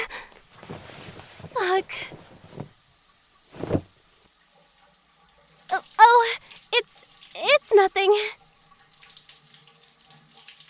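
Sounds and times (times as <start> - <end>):
shower water running in a steady hissing stream: 0.0 - 10.6
speech: 1.8 - 2.2.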